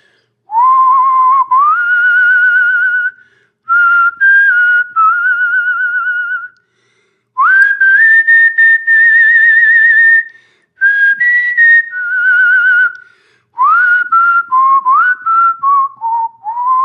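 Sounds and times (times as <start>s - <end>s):
man whistling a slow song melody: 0.5s - 6.7s, 7.4s - 16.8s.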